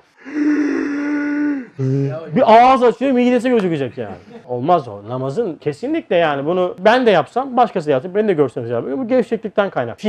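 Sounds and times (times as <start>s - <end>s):
human voice imitating a loud drawn-out yawn: 0.0s - 2.2s
speech: 1.8s - 10.0s.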